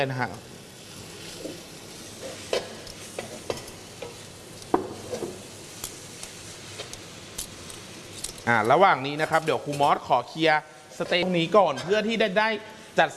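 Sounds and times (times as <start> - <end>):
speech: 0.0 - 0.5, 8.5 - 13.1
bean sprouts and garlic chives sizzling in a stir-fry for pad thai: 0.0 - 13.0
spatula scraping against the pan: 1.0 - 4.3.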